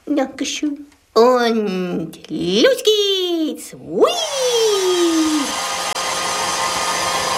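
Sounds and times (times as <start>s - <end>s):
speech: 0.1s - 5.0s
hair dryer blowing: 4.0s - 7.3s.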